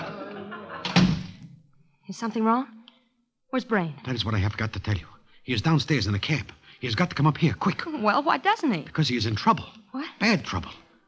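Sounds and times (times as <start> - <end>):
laughter: 0.0 - 1.1
door swinging shut: 0.8 - 1.6
speech: 2.1 - 2.8, 3.5 - 10.8.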